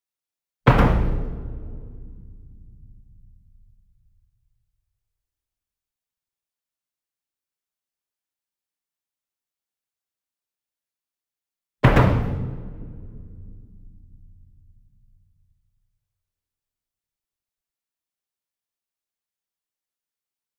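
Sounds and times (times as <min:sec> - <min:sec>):
single 66 inch drum struck with double soft beater, medium: 0:00.7 - 0:03.8, 0:11.8 - 0:14.9.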